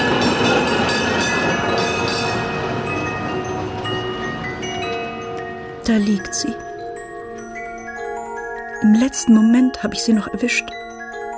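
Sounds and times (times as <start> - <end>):
tram running on its rails: 0.0 - 6.5
speech: 5.9 - 6.7, 8.8 - 10.8.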